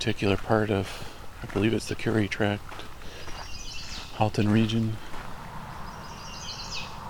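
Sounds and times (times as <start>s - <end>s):
speech: 0.0s - 2.9s, 4.2s - 5.1s
rumbling outdoor background by a road in the Currie Tract: 0.0s - 7.0s
mourning warbler singing by a road in the Currie Tract: 3.2s - 7.0s
chestnut-sided warbler singing by a road in the Currie Tract: 3.4s - 4.9s, 5.7s - 7.0s.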